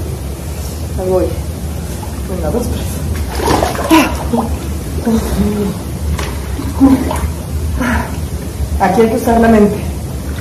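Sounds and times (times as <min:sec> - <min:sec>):
speech: 0:01.0 - 0:01.4, 0:02.3 - 0:05.9, 0:06.7 - 0:08.2, 0:08.8 - 0:09.9
water splashing as a person moves into a cold plunge pool: 0:01.8 - 0:08.3.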